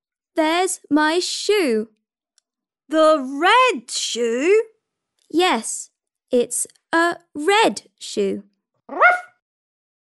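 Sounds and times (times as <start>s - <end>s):
speech: 0.4s - 2.0s, 2.9s - 4.7s, 5.3s - 9.3s
dog bark: 8.9s - 9.4s.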